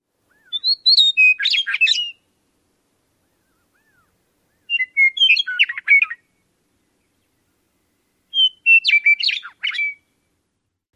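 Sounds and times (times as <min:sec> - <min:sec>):
western meadowlark male singing: 0:00.3 - 0:02.3, 0:03.4 - 0:06.3, 0:08.3 - 0:10.1.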